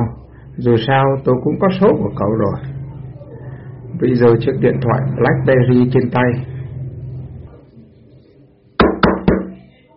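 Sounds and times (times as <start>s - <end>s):
speech: 0.1s - 2.8s, 4.0s - 6.5s
knocking on the closed door of a private restaurant room: 8.8s - 9.6s.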